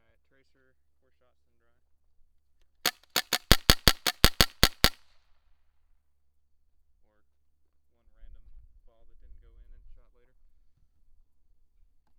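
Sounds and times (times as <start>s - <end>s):
gunshots: 2.9s - 5.0s.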